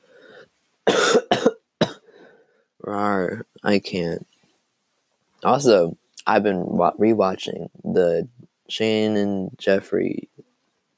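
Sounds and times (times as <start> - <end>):
person coughing: 0.9 - 2.1
speech: 2.9 - 4.3, 5.4 - 10.3.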